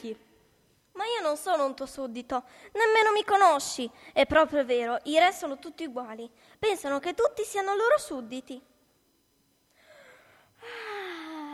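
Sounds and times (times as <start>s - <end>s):
speech: 0.0s - 0.3s, 1.0s - 8.7s
person yawning: 10.0s - 11.5s.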